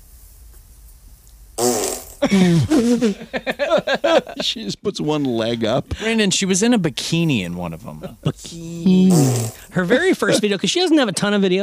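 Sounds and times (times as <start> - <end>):
fart: 1.6 - 2.2, 9.0 - 9.7
laughter: 2.2 - 6.3, 7.8 - 8.6, 9.7 - 11.6
speech: 2.2 - 11.6.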